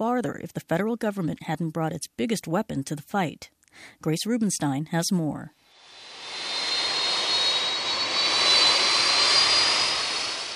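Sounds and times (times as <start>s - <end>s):
speech: 0.0s - 5.6s
thin high whine of DC-10 jumbo jet: 5.7s - 10.5s
DC-10 jumbo jet firefighting air tanker roaring over a Sierra wildfire: 5.8s - 10.5s.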